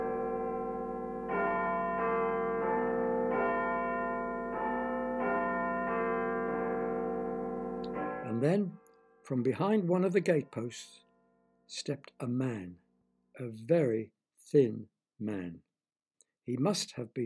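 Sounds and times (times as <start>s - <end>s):
doorbell chime ringing: 0.0s - 8.4s
speech: 8.3s - 11.0s, 11.7s - 12.8s, 13.4s - 15.7s, 16.5s - 17.2s.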